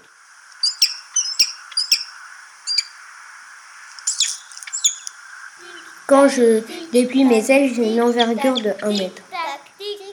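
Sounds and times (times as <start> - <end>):
faint hiss: 0.0 - 10.1
peregrine falcon giving sharp harsh calls: 0.6 - 3.0, 3.9 - 5.2, 8.1 - 9.2
speech: 6.1 - 9.2.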